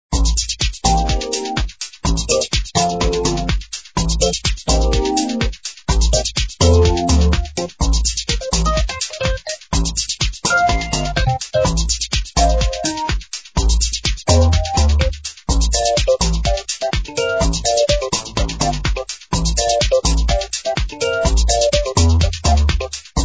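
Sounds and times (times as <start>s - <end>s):
jazz music: 0.2s - 23.2s.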